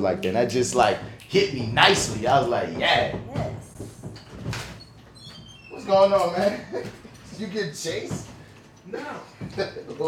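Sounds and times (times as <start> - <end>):
speech: 0.0 - 3.5, 5.9 - 8.3, 8.9 - 10.0
door opening with a creak: 2.4 - 10.0.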